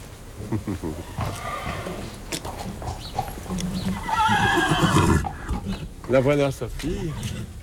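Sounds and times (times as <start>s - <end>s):
noise: 0.0s - 7.6s
speech: 0.5s - 7.6s
stallion neighing and whinnying: 1.0s - 2.1s, 3.2s - 5.9s.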